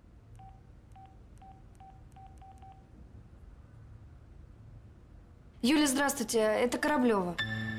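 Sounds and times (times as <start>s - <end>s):
telephone keypad tones dialing a number: 0.4s - 2.9s
speech: 5.6s - 7.6s.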